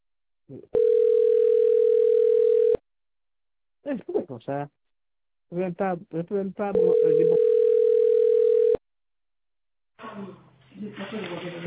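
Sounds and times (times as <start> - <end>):
speech: 0.5 - 1.2, 3.8 - 4.8, 5.5 - 7.5, 10.2 - 11.6
telephone line tone during a call transfer: 0.7 - 2.8, 6.8 - 8.8.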